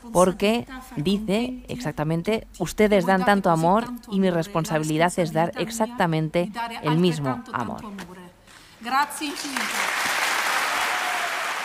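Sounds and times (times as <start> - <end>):
speech: 0.0 - 8.2, 8.8 - 9.9
large audience applause in a hall: 9.2 - 11.6.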